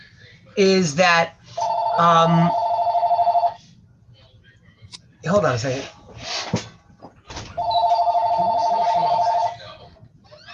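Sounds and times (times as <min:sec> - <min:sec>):
speech: 0:00.6 - 0:01.4, 0:02.0 - 0:02.6, 0:05.2 - 0:06.0
telephone ringing with long steady electronic tone: 0:01.5 - 0:03.6, 0:07.5 - 0:09.7.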